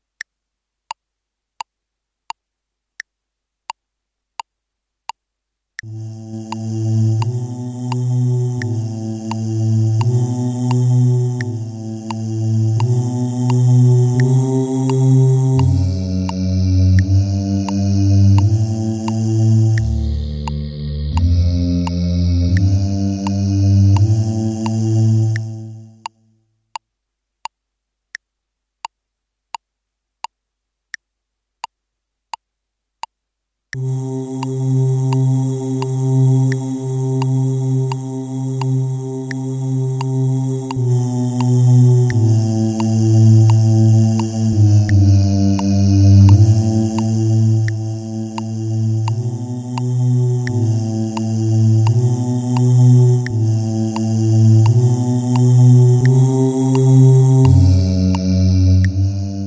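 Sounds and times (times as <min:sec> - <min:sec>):
basses: 0:05.8 - 0:25.9, 0:33.8 - 0:59.4.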